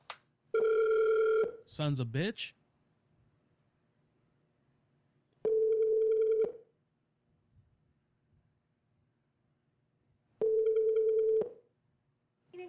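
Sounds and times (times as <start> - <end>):
telephone ringback tone through the line: 0.6 - 1.6, 5.4 - 6.6, 10.4 - 11.6
speech: 1.8 - 2.6.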